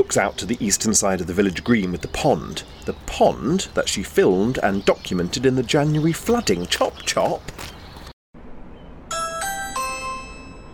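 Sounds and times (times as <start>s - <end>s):
speech: 0.0s - 7.8s
smart video doorbell three-tone descending chime: 9.1s - 10.7s.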